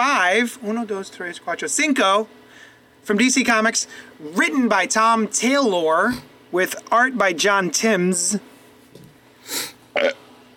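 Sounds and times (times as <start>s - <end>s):
speech: 0.0s - 8.5s, 9.5s - 10.2s
short two-part burp: 9.9s - 10.3s.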